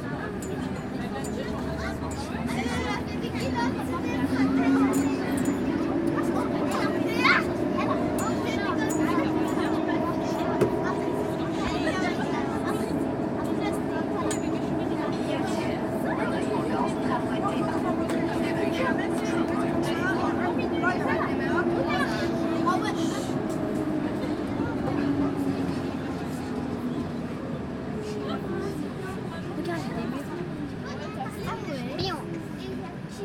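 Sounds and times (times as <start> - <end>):
crowd murmuring in a subway: 0.0 - 33.2
metro train in Lyon rumbling through a subway: 0.0 - 33.2.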